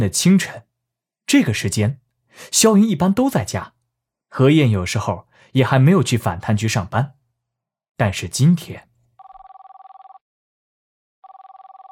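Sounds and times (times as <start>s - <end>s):
speech: 0.0s - 0.7s, 1.3s - 7.2s, 8.0s - 8.9s
unanswered telephone ringback on an international call to a home landline: 9.2s - 10.2s, 11.2s - 11.8s.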